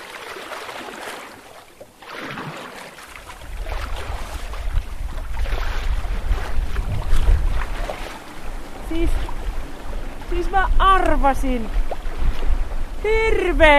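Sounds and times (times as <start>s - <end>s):
wind blowing hard at sea from the north: 3.4s - 13.7s
speech: 10.5s - 11.8s, 13.0s - 13.7s.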